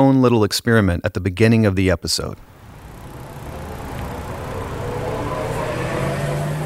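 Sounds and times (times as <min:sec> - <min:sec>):
speech: 0:00.1 - 0:02.5
car traffic noise at a busy city intersection: 0:02.4 - 0:06.6
low engine rumble: 0:02.4 - 0:06.6
vehicle drone: 0:02.4 - 0:06.6.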